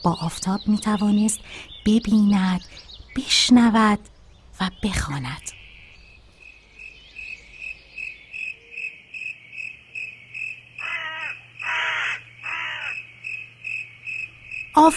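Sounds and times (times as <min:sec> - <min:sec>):
speech: 0:00.0 - 0:05.6, 0:14.8 - 0:14.9
crickets chirping: 0:05.5 - 0:14.9
crows cawing: 0:10.8 - 0:13.1.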